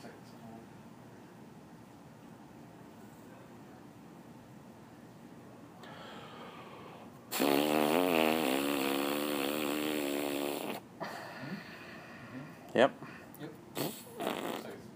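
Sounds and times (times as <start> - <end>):
sputtering squelchy hand fart noises: 7.3 - 10.9, 13.7 - 14.7.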